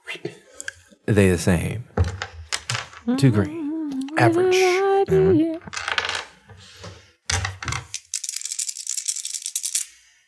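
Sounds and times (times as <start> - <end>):
speech: 1.1 - 1.9, 3.1 - 3.6, 4.2 - 5.8
dice clattering and rattling: 5.7 - 6.3, 7.3 - 10.0.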